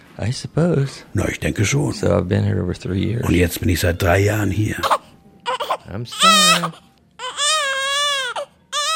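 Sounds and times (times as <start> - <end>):
speech: 0.2 - 5.0, 5.9 - 6.9
newborn baby with withdrawal symptoms crying in a hospital ward: 4.8 - 8.9.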